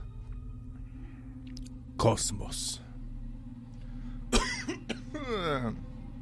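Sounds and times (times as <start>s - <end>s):
steady low hum: 0.0s - 6.2s
speech: 2.0s - 2.8s, 5.3s - 5.9s
sharp coughs: 4.3s - 5.4s.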